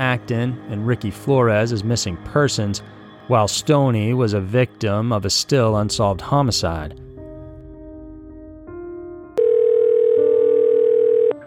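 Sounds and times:
speech: 0.0 - 7.1
steady telephone dial tone: 9.4 - 11.4.

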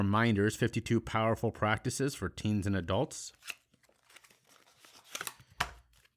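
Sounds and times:
speech: 0.0 - 3.6
deck of cards being shuffled: 3.3 - 6.1.

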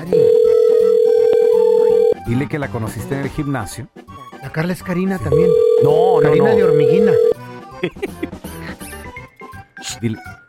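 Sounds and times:
loud steady telephone dial tone while calling: 0.0 - 2.2, 5.3 - 7.4
speech: 2.3 - 8.3, 10.0 - 10.4
laughter: 7.7 - 8.7.

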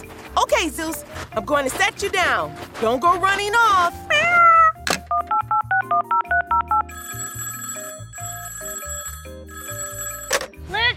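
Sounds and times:
speech: 0.4 - 4.0
touch-tone dialing beeps on a shell phone: 5.1 - 10.5
phone ringing: 5.1 - 10.8.

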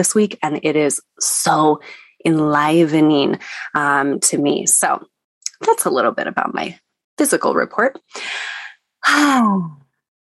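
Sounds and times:
speech: 0.0 - 9.8
deep breath: 8.1 - 8.8.

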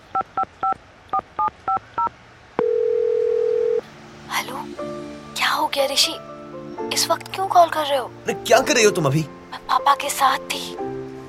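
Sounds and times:
phone keypad dialing beeps: 0.4 - 3.8
long steady phone ringing tone: 1.4 - 3.8
speech: 5.9 - 6.3, 7.0 - 10.8.

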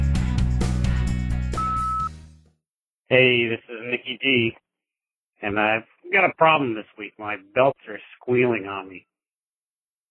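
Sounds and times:
rhythmic music bed: 0.0 - 2.3
steady electronic voicemail recording beep: 1.6 - 2.1
speech: 3.1 - 4.6, 5.4 - 9.1.

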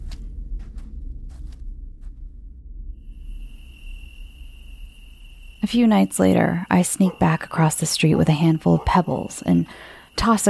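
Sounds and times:
low rumble of wind: 0.0 - 10.2
crickets chirping on a summer night: 2.6 - 10.4
speech: 5.6 - 10.4.

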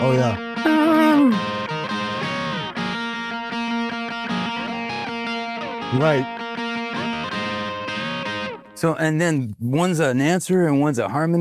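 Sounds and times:
speech: 0.0 - 0.5, 5.9 - 6.4, 8.8 - 11.3
distorted electric guitar playing a counter-melody riff: 0.0 - 9.0.

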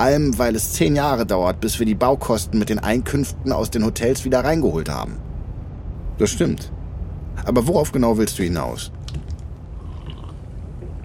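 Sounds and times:
speech: 0.0 - 5.3, 6.2 - 6.8, 7.4 - 9.0
low rumble: 0.0 - 11.0
slurping coffee: 9.7 - 10.4.

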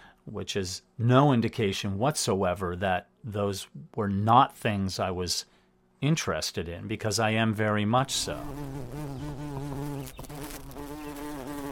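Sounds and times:
speech: 0.3 - 10.8
bumblebees, honeybees, wasps and yellow jackets buzzing outside a home in New Hampshire: 8.1 - 11.7.

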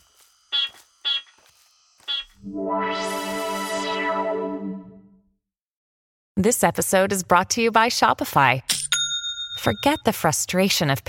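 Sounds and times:
speech: 2.4 - 2.8, 6.4 - 8.8, 9.6 - 11.0
long buzzy electronic tone: 2.4 - 5.1.

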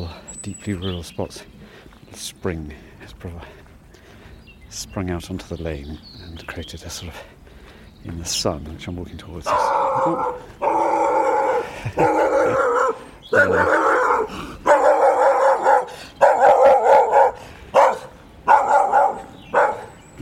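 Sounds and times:
speech: 0.0 - 3.6, 4.7 - 7.4, 8.0 - 10.7, 11.8 - 12.6, 13.3 - 13.9
brown Labrador-cross dog barking on a quiet rural lane: 9.5 - 20.1
laughter: 11.6 - 12.8.

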